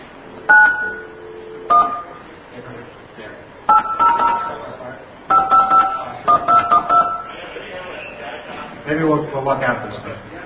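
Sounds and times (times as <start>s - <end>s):
noisy telephone line background: 0.0s - 10.4s
telephone touch-tone dialing beeps: 0.5s - 2.0s, 3.7s - 4.5s, 5.3s - 7.3s
speech: 8.9s - 10.4s.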